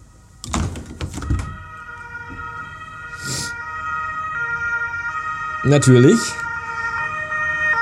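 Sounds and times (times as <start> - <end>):
emergency vehicle siren wailing outside: 0.0 - 7.8
knocks indoors: 0.4 - 1.6
speech: 5.6 - 6.5.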